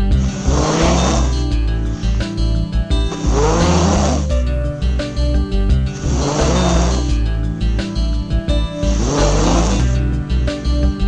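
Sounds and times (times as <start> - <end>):
person snoring in their sleep: 0.1 - 7.4, 8.6 - 10.9.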